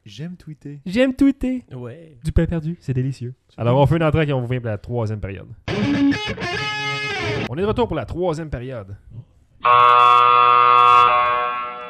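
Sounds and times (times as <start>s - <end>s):
speech: 0.1s - 5.6s, 7.5s - 11.2s
old-school gymnasium-style buzzer giving a harsh electronic buzz: 9.6s - 11.8s.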